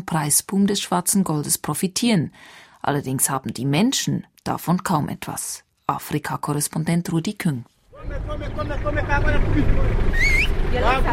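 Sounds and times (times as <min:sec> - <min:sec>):
speech: 0:00.0 - 0:11.1
minibus conductor shouting out for passengers: 0:07.9 - 0:11.1
steady rumble of engines: 0:07.9 - 0:11.1
busy street noise: 0:08.0 - 0:11.1.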